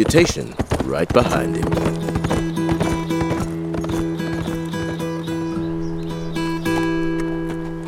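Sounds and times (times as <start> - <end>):
speech: 0.0 - 2.0
horse hooves clip-clopping as rider sets off: 0.0 - 7.8.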